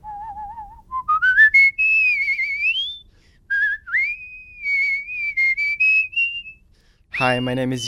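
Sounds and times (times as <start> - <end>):
whistling champion whistling a melodic tune: 0.0 - 7.8
speech: 7.2 - 7.8.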